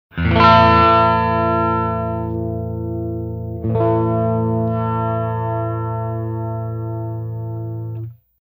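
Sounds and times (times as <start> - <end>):
electric guitar with tone knob turned: 0.1 - 8.3.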